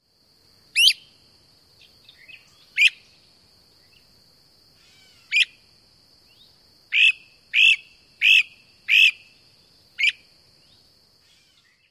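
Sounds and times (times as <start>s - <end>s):
Great Crested Flycatcher weep and prrrt calls: 0.8s - 1.1s, 1.8s - 3.2s, 4.8s - 5.6s, 6.3s - 9.4s, 11.2s - 11.8s.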